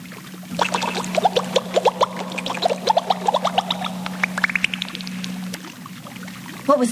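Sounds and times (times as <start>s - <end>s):
water splashing and gurgling: 0.5s - 6.1s
steady low hum: 0.5s - 6.4s
speech: 6.7s - 6.9s.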